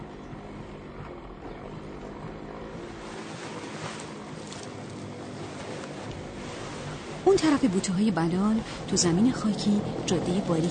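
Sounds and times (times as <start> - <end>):
distant motorcycle engine droning: 0.0 - 10.6
speech: 7.3 - 10.6.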